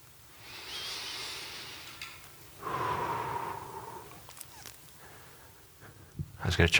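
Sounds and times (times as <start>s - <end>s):
slow deep breathing close to the microphone: 0.4s - 6.2s.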